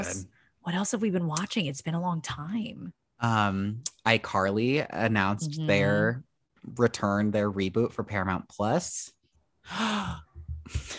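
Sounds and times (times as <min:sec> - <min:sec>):
speech: 0:00.0 - 0:10.9
sharp surprised gasp: 0:09.7 - 0:10.2.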